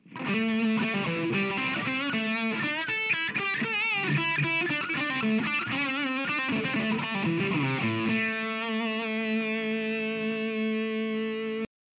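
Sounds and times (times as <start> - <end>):
Les Paul electric guitar metal solo on bridge pickup: 0.0 - 11.7.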